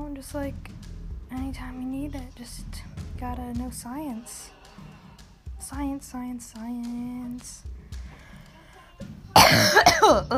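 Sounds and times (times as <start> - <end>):
speech: 0.2 - 4.9, 5.6 - 7.7, 9.5 - 10.3
cough: 9.4 - 10.3.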